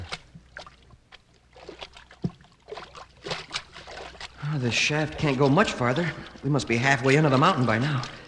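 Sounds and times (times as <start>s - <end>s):
feet wading through ankle-deep water inside a mine cavern: 0.0s - 8.2s
speech: 4.5s - 8.2s.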